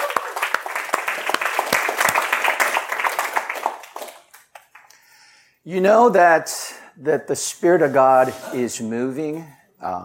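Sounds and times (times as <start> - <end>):
congregation applauding: 0.0 - 4.8
speech: 5.6 - 10.0.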